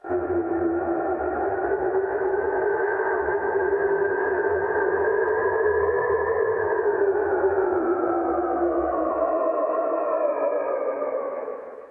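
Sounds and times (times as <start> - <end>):
eerie droning ghost background loop: 0.0 - 11.9.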